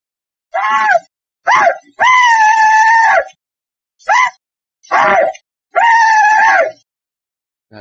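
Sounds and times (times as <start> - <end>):
Civil War rebel yell whooping cries: 0.5 - 3.3, 4.1 - 6.8.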